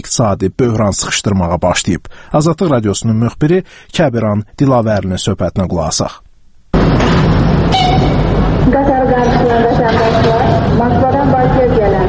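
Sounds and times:
speech: 0.1s - 6.2s
train rumbling at Baku railway station: 6.8s - 11.8s.

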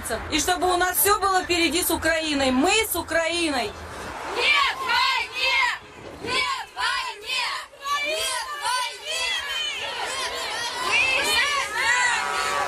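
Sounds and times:
speech: 0.1s - 3.8s, 4.4s - 4.6s
crowd at a women's protest rally in Simferopol shouting and chanting: 3.7s - 12.6s
rhythmic bursts of collective yelling: 4.2s - 12.6s.

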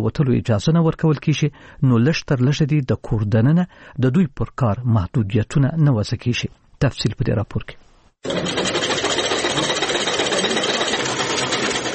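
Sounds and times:
speech: 0.0s - 8.8s
sewing machines running in a tailoring workshop: 8.2s - 11.9s.

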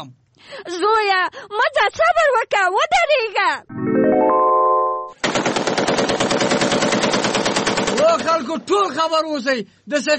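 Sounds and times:
speech: 0.0s - 4.5s, 8.4s - 10.1s
rapid automatic gunfire from a gun: 5.2s - 8.4s.

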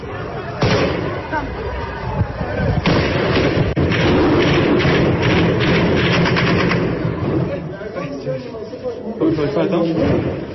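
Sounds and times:
noisy crowd at a street protest: 0.0s - 10.5s
rapid gunfire at a street protest: 2.8s - 7.1s.

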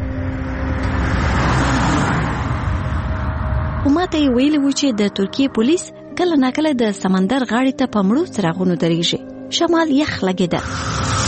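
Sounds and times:
car passing along a road near a seashore: 0.0s - 4.8s, 10.6s - 11.2s
speech: 4.0s - 11.2s.

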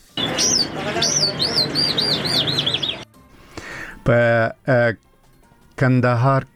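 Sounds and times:
ornamental caged birds chirping at a bird market: 0.0s - 3.9s
speech: 0.4s - 2.6s, 4.0s - 5.1s, 5.8s - 6.5s.

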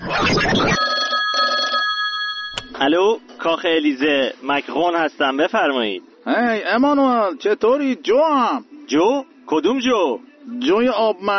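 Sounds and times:
telephone ringing with tonal trills: 0.6s - 3.1s
speech: 2.8s - 11.3s.

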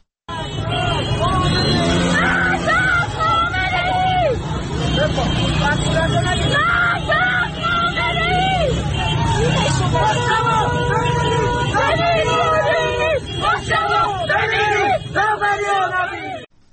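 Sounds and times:
dense protest crowd shouting and chanting slogans: 0.3s - 16.5s.

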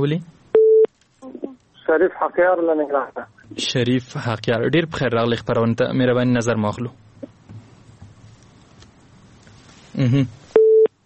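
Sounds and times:
speech: 0.0s - 0.4s, 1.9s - 7.1s, 10.0s - 10.4s
faint low noise: 0.0s - 11.0s
telephone busy tone beep after a dropped call: 0.6s - 0.9s, 10.6s - 10.9s.

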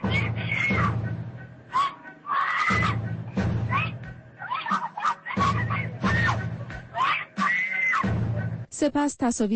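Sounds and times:
woman screaming while being arrested: 0.0s - 1.0s, 1.7s - 8.1s
speech: 8.8s - 9.5s.

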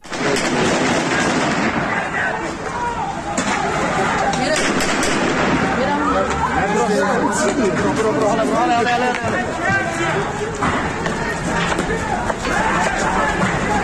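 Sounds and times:
gunfire during heavy clashes in a border city in West Azerbaijan province: 0.0s - 2.2s, 4.5s - 5.7s
voices: 0.0s - 13.8s.

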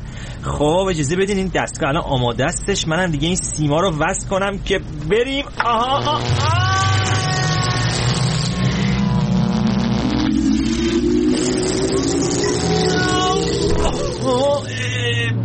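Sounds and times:
speech: 0.4s - 6.6s
tonal sounds: 5.8s - 14.7s
car engine revving: 6.0s - 14.8s.

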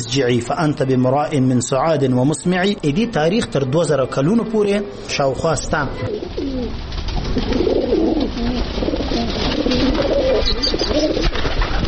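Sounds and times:
speech: 0.1s - 7.8s
pigeons cooing: 4.3s - 11.8s.

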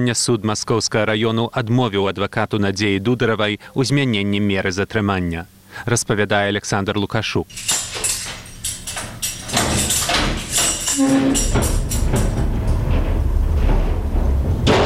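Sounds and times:
speech: 0.0s - 7.8s, 11.0s - 12.4s
heavy iron door of a pretrial detention center clanking and grinding shut: 7.5s - 14.8s.

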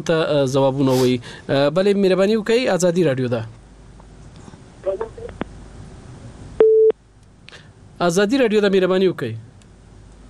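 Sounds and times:
speech: 0.0s - 3.6s, 8.0s - 9.5s
telephone busy tone after a call is cut off: 6.6s - 6.9s.

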